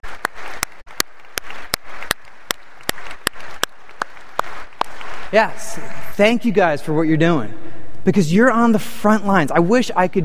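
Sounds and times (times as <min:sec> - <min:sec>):
crowd applauding: 0:00.0 - 0:05.6
speech: 0:05.3 - 0:10.2.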